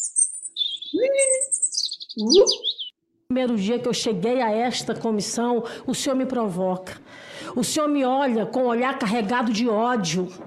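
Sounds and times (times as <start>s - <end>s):
bird chirping and warbling: 0.0s - 3.0s
speech: 2.2s - 10.4s.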